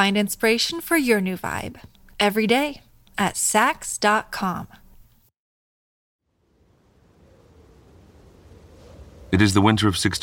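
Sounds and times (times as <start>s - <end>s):
speech: 0.0s - 4.8s, 9.3s - 10.2s
bitter wind howling by a river: 6.3s - 10.2s.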